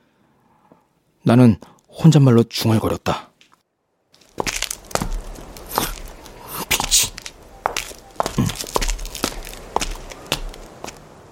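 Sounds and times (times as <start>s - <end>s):
speech: 1.2s - 3.3s
footsteps of a person walking toward a parking lot with gritty crunch: 4.2s - 11.3s.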